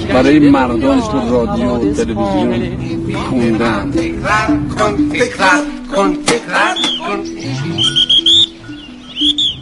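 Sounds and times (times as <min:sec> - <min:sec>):
speech: 0:00.2 - 0:07.9
person whistling an imitation of nightingale song: 0:06.7 - 0:09.6.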